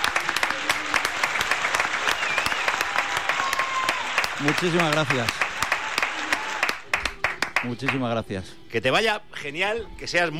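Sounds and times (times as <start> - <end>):
applause from a group of people: 0.0 - 8.1
speech: 4.4 - 5.4, 7.6 - 10.3.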